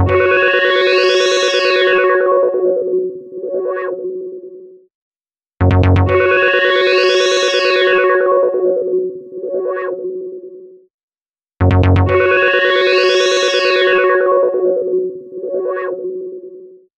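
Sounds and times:
modular synth phone ringtone: 0.1s - 4.6s, 6.2s - 10.6s, 12.2s - 16.7s.

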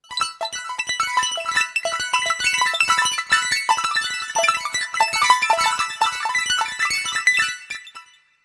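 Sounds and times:
ringtone on a ZTE Open C phone: 0.5s - 6.9s.

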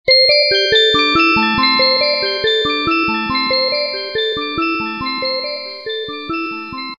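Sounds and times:
echo ringtone of a Samsung SGH-F275L phone: 0.1s - 6.9s.

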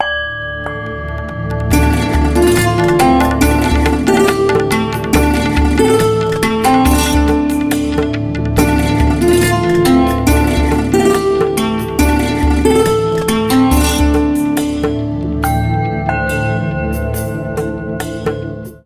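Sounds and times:
santoor ringtone on a Samsung Z3 phone: 0.0s - 18.6s.

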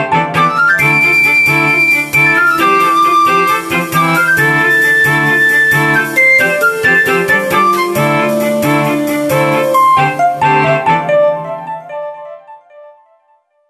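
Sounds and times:
flute ringtone on a Sony Ericsson P1i phone: 0.1s - 12.0s.

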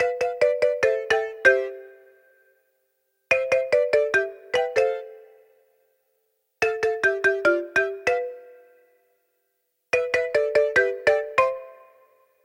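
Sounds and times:
marimba ringtone of a Meizu MX4 phone: 0.0s - 2.2s, 3.3s - 5.4s, 6.6s - 9.0s, 10.0s - 12.2s.

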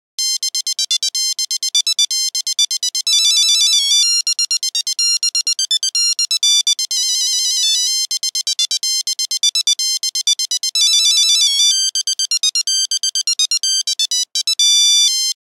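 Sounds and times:
phone buzzer melody: 0.2s - 15.4s.

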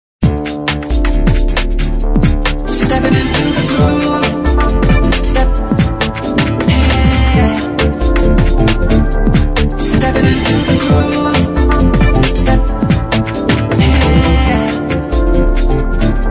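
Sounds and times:
hip hop beat: 0.2s - 16.2s.

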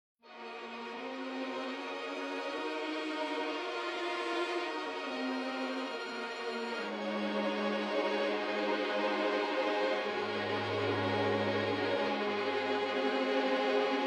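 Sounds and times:
orchestral background music: 0.3s - 14.0s.

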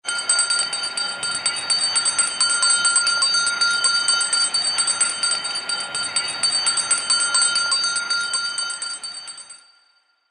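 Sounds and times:
bells ringtone: 0.0s - 10.2s.

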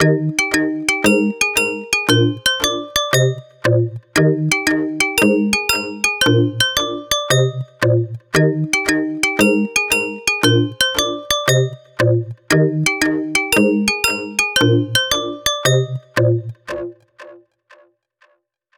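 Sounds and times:
toy robot ringtone: 0.0s - 3.6s, 4.5s - 7.8s, 8.7s - 12.0s, 12.8s - 16.2s.

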